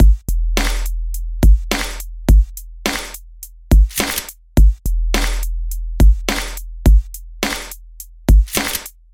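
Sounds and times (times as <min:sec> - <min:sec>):
sub kick drum: 0:00.0 - 0:00.8, 0:01.4 - 0:02.6, 0:03.7 - 0:03.9, 0:04.6 - 0:05.3, 0:06.0 - 0:07.1
hip hop beat with sub kick: 0:00.0 - 0:09.1.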